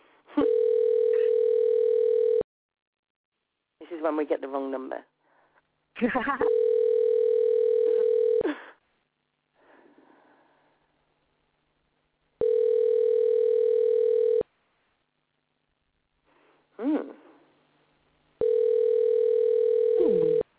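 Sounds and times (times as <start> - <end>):
outgoing phone call ringing tone: 0.4 - 2.4, 6.5 - 8.4, 12.4 - 14.4, 18.4 - 20.4
speech: 4.0 - 5.2, 6.0 - 6.7.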